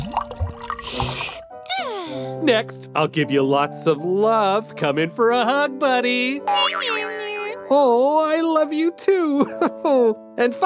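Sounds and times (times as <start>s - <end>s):
fresh water poured for a pet kangaroo, splashing: 0.0s - 1.6s
speech: 2.4s - 7.0s, 7.7s - 10.6s.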